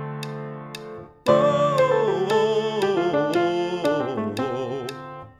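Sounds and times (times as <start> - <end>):
high descending minor pentatonic vocal warm-up pattern: 1.3 - 5.3.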